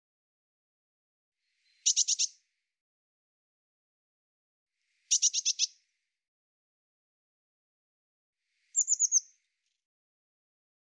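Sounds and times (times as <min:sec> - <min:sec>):
Eurasian blue tit churring: 0:01.8 - 0:02.3, 0:05.1 - 0:05.7, 0:08.8 - 0:09.2.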